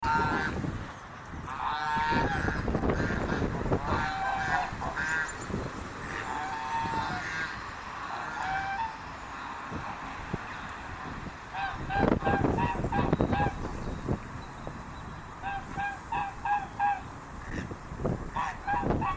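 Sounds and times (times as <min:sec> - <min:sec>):
swan goose calling: 0:00.0 - 0:00.6, 0:01.5 - 0:09.9, 0:11.5 - 0:13.7, 0:15.4 - 0:19.1.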